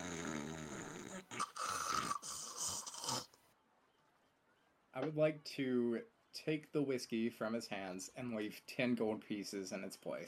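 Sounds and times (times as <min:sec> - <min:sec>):
voice imitating a bartender's loud exaggerated snoring: 0:00.0 - 0:03.4
speech: 0:05.0 - 0:10.2.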